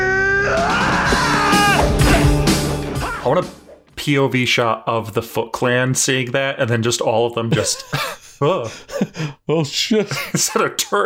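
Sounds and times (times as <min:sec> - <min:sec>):
person imitating a furious battle scream: 0:00.0 - 0:03.4
speech: 0:03.2 - 0:11.0.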